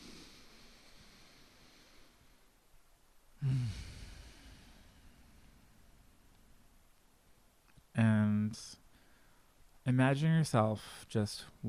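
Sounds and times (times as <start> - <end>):
big breath in during a guided relaxation exercise: 0.0 - 2.5, 3.4 - 5.7, 8.9 - 9.5
faint steady hiss: 0.0 - 11.6
speech: 9.9 - 11.6.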